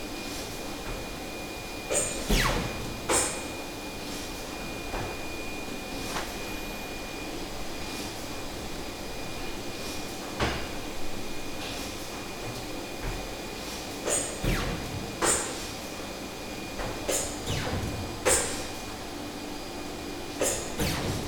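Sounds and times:
print shop interior ambience: 0.2s - 21.2s
pneumatic robot machine noise in a print shop, medium close: 1.9s - 3.5s, 13.6s - 16.1s, 16.7s - 19.1s, 20.3s - 21.2s.

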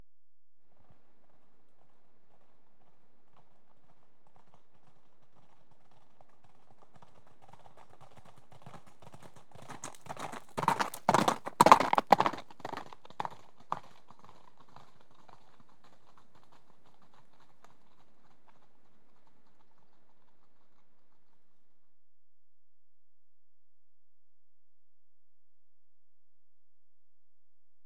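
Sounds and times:
two horses cantering past on gravel: 3.7s - 20.6s.

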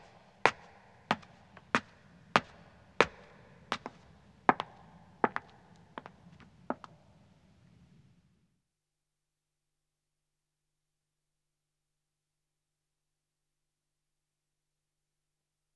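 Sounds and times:
footsteps ascending stone stairs with echo: 0.5s - 7.0s.

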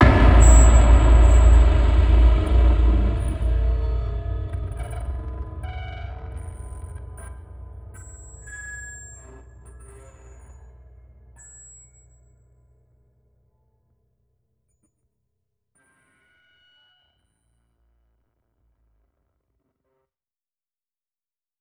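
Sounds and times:
cinematic impacts: 0.0s - 11.6s
glitchy sound tail: 0.0s - 11.7s.

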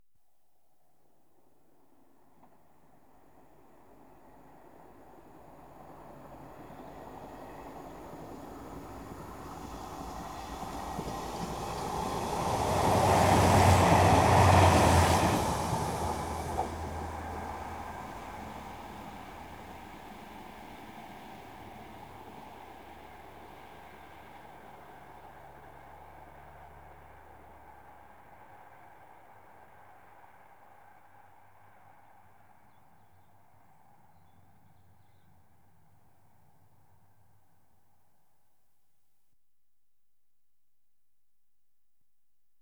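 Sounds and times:
diesel commuter trains passing: 5.4s - 30.5s.

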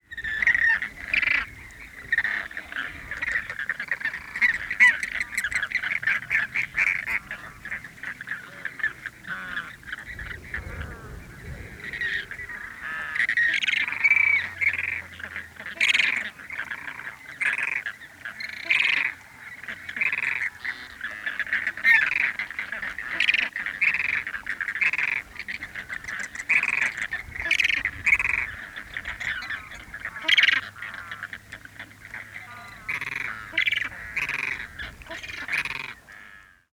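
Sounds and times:
flamingos in Chile: 0.1s - 36.7s
light wind gust in Chile: 5.2s - 14.6s.

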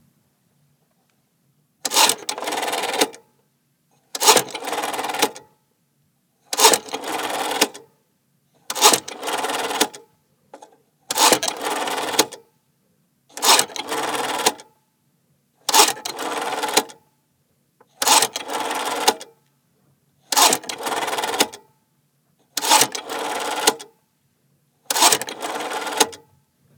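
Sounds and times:
wall phone rotary dial dialing five: 1.9s - 3.2s, 4.2s - 5.4s, 6.6s - 7.8s, 8.7s - 10.0s, 11.1s - 12.4s, 13.4s - 14.6s, 15.7s - 17.0s, 18.0s - 19.2s, 20.3s - 21.6s, 22.6s - 23.9s, 24.9s - 26.2s.

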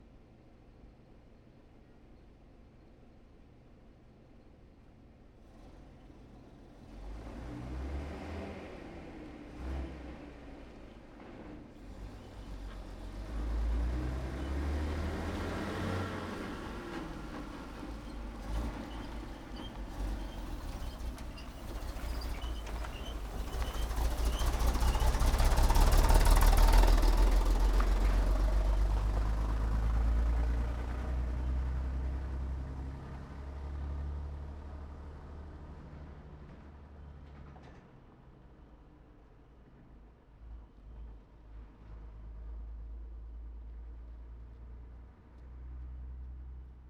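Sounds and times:
M1 Corbitt cargo truck prime mover passing by: 12.5s - 32.7s.

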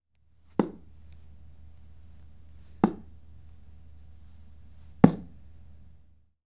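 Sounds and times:
dart thrown at board: 0.6s - 1.1s, 2.8s - 3.2s, 5.0s - 5.4s.

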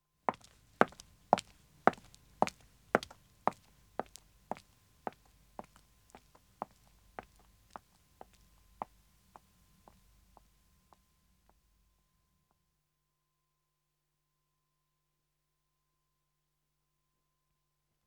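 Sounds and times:
woman's footsteps walking away on pavement: 0.3s - 10.5s.

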